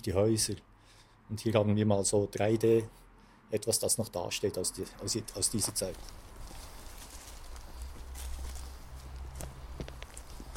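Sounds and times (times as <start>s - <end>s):
speech: 0.0s - 0.7s, 1.3s - 6.3s
soft crunching footsteps of people walking into a forest on flint: 5.0s - 10.5s.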